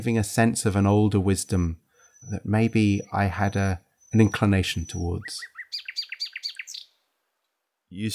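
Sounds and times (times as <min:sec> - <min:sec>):
speech: 0:00.0 - 0:05.9, 0:07.9 - 0:08.1
nightingale singing: 0:01.4 - 0:07.1.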